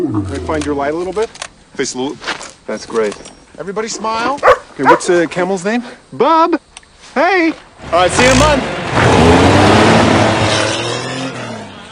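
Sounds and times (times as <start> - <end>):
speech: 0.0 - 6.6, 7.2 - 9.4
car driving off: 7.8 - 11.9.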